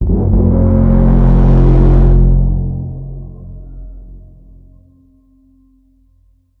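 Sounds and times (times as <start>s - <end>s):
apocalyptic trumpet blast: 0.0s - 4.6s.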